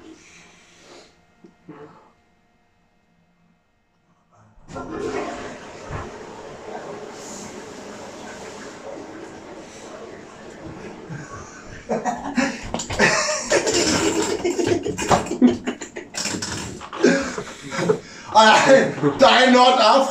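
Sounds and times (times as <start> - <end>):
waterfall roaring: 5.0 - 11.9
laughter: 8.2 - 19.7
speech: 18.4 - 20.0.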